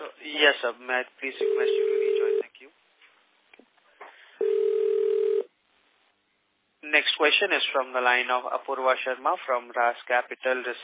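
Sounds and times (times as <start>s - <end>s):
speech: 0.3s - 2.0s, 7.0s - 10.8s
telephone ringtone on investor conference call line: 1.4s - 2.4s, 4.4s - 5.5s.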